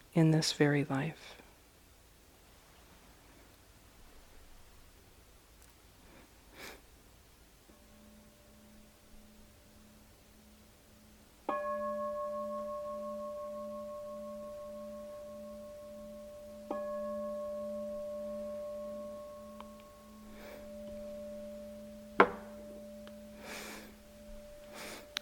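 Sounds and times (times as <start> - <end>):
speech: 0.2 - 1.4
meditation bell ringing: 7.7 - 25.2.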